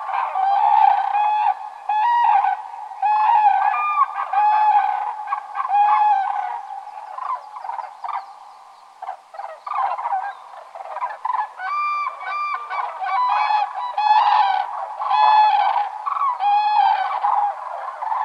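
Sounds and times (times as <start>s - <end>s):
Common cranes bugling on spring migration in Finland: 0.0s - 18.2s.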